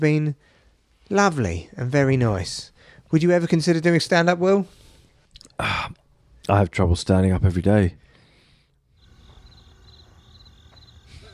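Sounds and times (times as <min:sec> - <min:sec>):
speech: 0:00.0 - 0:04.8, 0:05.6 - 0:08.0
cricket chirping: 0:08.9 - 0:11.3.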